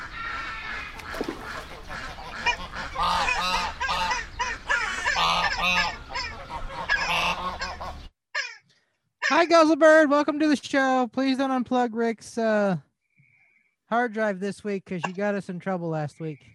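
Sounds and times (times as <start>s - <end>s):
flock of ducks quacking and honking: 0.0s - 9.5s
speech: 9.4s - 12.9s, 13.9s - 16.5s.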